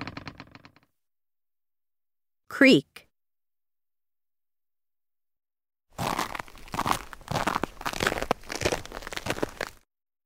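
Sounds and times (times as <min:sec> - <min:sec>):
speech: 0:02.5 - 0:03.1
crunch sound effect with dry gritty crunching bursts: 0:05.9 - 0:09.9.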